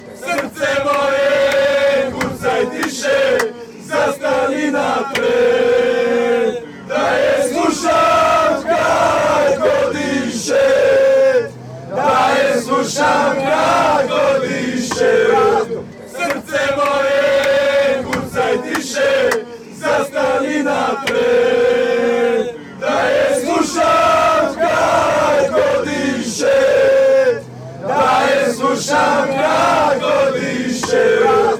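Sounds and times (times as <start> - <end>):
Croatia football fans chanting: 0.0 - 31.5.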